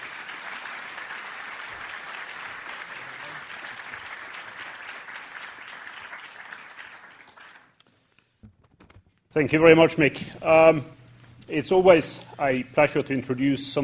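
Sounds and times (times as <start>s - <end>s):
large audience applause: 0.0s - 7.8s
speech: 9.3s - 13.8s.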